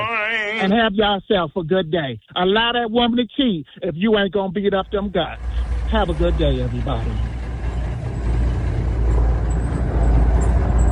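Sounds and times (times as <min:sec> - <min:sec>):
speech: 0:00.6 - 0:07.4
road noise of a passing semi-truck: 0:04.5 - 0:10.9
heavy semi-truck engine drone: 0:04.6 - 0:10.9.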